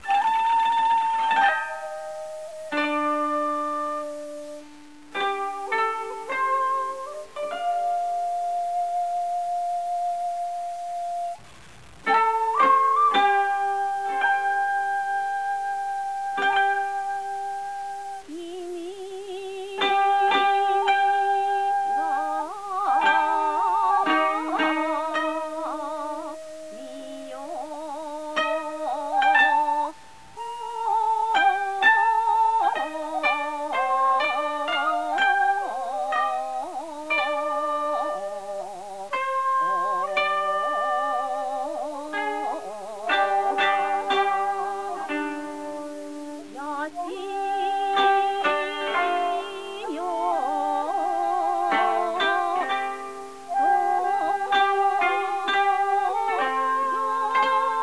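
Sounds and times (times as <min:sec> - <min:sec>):
Japanese music: 0:00.0 - 0:57.8.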